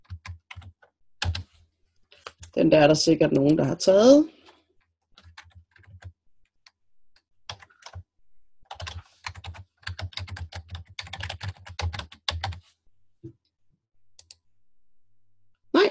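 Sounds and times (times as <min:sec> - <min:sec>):
computer keyboard typing: 0:00.0 - 0:01.5, 0:05.2 - 0:06.2, 0:07.5 - 0:12.6
speech: 0:02.6 - 0:04.4.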